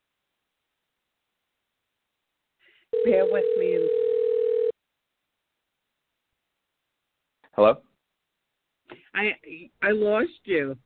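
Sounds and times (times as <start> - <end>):
speech: 3.0 - 4.2, 7.6 - 7.9, 9.2 - 10.8
steady single-pitched telephone dial tone: 3.0 - 4.8.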